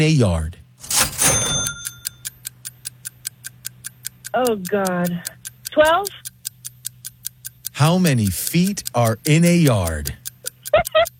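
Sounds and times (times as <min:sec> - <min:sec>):
speech: 0:00.0 - 0:00.6, 0:04.4 - 0:06.2, 0:07.8 - 0:10.2
low hum: 0:00.0 - 0:11.1
ringing burst: 0:00.9 - 0:02.2
clock ticking during timed quiz: 0:01.2 - 0:11.1.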